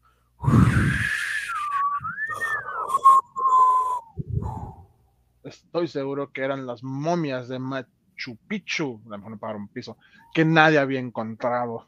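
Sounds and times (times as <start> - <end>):
eerie menacing wind whistling: 0.4 - 5.0
rushing wind gusts: 4.2 - 4.9
speech: 5.7 - 11.8.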